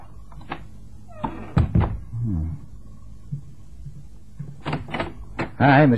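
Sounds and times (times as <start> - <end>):
door thudding and creaking as it swings open: 0.5 - 2.0
quiet footsteps: 3.2 - 4.6
speech: 5.6 - 5.9.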